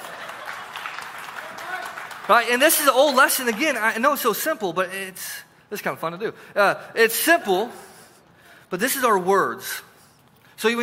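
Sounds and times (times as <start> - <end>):
audience applause: 0.0 - 3.8
speech: 2.3 - 7.9, 8.7 - 9.9, 10.6 - 10.8.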